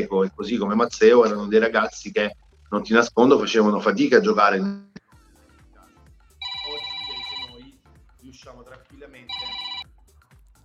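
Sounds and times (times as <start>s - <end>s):
speech: 0.0s - 4.9s
telephone ringing in bright electronic bursts: 6.4s - 7.6s, 9.3s - 9.9s.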